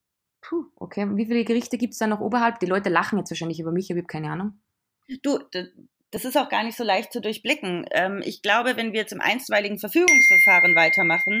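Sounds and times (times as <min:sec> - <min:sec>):
speech: 0:00.5 - 0:11.3
bright electronic notification chime of a mobile phone: 0:10.1 - 0:11.3.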